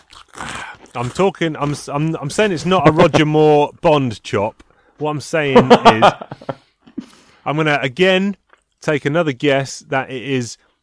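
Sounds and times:
biting into plantain crisps: 0.0 - 2.1
speech: 0.9 - 6.5, 7.4 - 10.8
laughter: 5.5 - 6.7.

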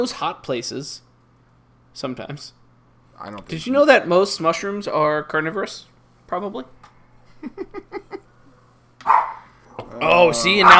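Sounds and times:
speech: 0.0 - 1.1, 2.0 - 2.6, 3.2 - 6.8, 7.4 - 8.1, 9.8 - 10.7
laughter: 7.3 - 8.4
dog barking outside in Spokane: 9.0 - 9.5, 10.5 - 10.7.

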